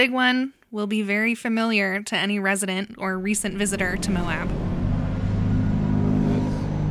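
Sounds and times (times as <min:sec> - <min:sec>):
speech: 0:00.0 - 0:04.7
ATVs and UTVs driving on residential roads: 0:03.2 - 0:06.8.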